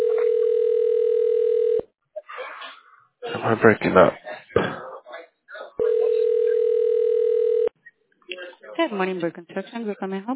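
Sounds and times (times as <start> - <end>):
telephone line tone while a call is being transferred: 0.0 - 1.8, 5.8 - 7.7
speech: 3.4 - 4.5, 8.9 - 10.3.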